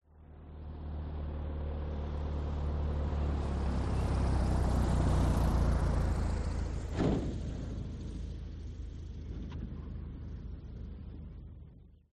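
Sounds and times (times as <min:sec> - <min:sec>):
propeller airplane: 0:00.1 - 0:12.1.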